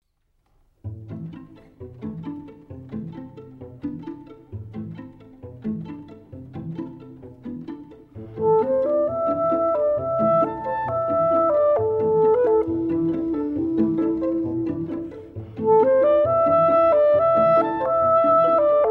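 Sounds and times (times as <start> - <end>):
string quartet: 0.8 - 18.8
clarinet: 0.9 - 18.8.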